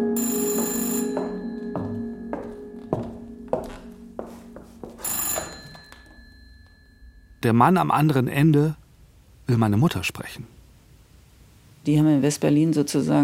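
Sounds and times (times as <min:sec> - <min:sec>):
telephone ringing with a trilling bell tone: 0:00.2 - 0:02.3, 0:05.0 - 0:07.4
speech: 0:07.4 - 0:08.8, 0:09.5 - 0:10.6, 0:11.8 - 0:13.2.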